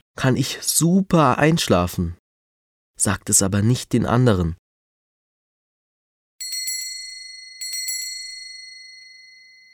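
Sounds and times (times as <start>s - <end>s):
speech: 0.2s - 2.2s, 3.0s - 4.6s
little bells jingling: 6.4s - 9.7s.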